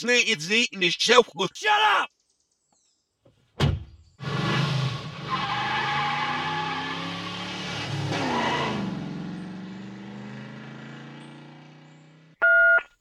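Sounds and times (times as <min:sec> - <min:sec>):
speech: 0:00.0 - 0:02.2
rough tire noise: 0:04.2 - 0:12.4
car slowing down and stopping by road: 0:06.2 - 0:12.4.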